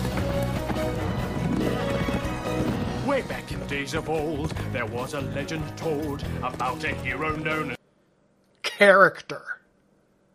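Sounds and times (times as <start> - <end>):
horse hooves clip-clopping: 0.0 - 7.6
speech: 3.2 - 7.8, 8.8 - 9.6.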